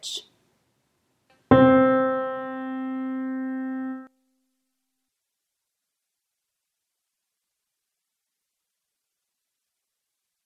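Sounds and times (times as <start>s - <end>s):
alto choir voice singing chromatic scale: 1.5s - 4.1s.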